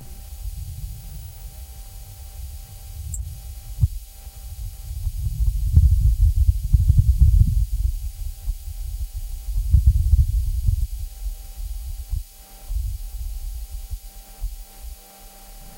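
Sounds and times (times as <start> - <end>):
low rumbling wind gusts on Mars: 0.0 - 14.6
faint hiss: 0.0 - 15.7.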